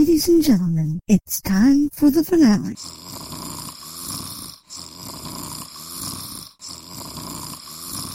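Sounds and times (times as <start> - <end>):
speech: 0.2 - 3.1
person snoring while asleep: 2.7 - 8.1.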